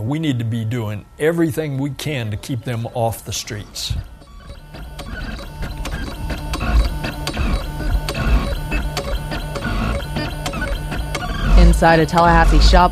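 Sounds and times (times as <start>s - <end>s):
speech: 0.0s - 4.1s, 11.8s - 12.9s
3D printer sharp clicks and ticks: 4.0s - 12.9s.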